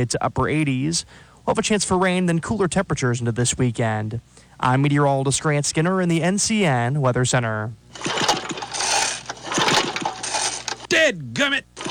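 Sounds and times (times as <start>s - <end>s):
speech: 0.0s - 8.3s, 11.1s - 11.8s
lawn mower engine struggling to start: 7.9s - 11.0s.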